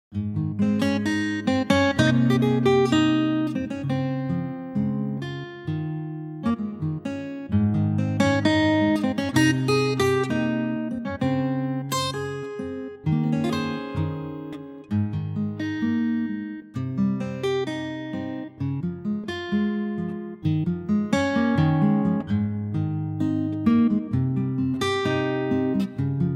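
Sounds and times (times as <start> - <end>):
acoustic guitar in A-flat: 0.1 - 26.3.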